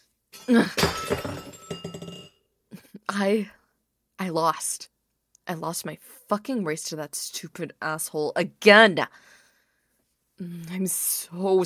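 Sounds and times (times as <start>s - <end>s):
breaking glass smashed in anger: 0.4s - 2.3s
speech: 0.5s - 1.6s, 3.1s - 3.6s, 4.2s - 4.9s, 5.5s - 9.4s, 10.4s - 11.6s.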